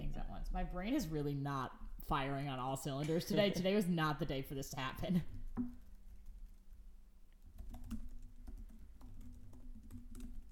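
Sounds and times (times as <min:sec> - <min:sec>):
speech: 0:00.5 - 0:05.8
typing on a computer keyboard: 0:07.4 - 0:10.5.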